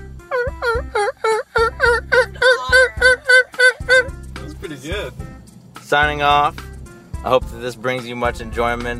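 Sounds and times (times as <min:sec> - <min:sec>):
listener imitating a turkey gobble call: 0:00.3 - 0:04.1
speech: 0:05.9 - 0:06.6, 0:07.2 - 0:08.9.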